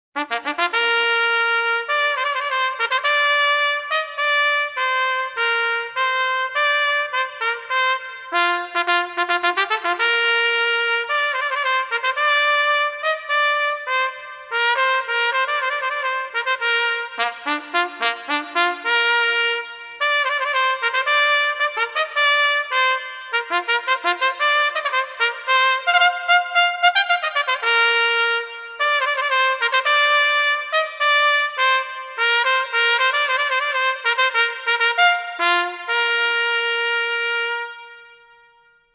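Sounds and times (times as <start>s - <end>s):
solo trumpet: 0.2s - 38.9s.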